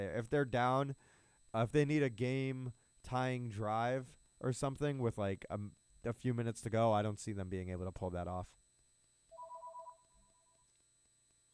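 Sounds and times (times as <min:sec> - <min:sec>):
speech: 0:00.0 - 0:08.6
phone ringtone two-note warbling trill: 0:09.3 - 0:10.6.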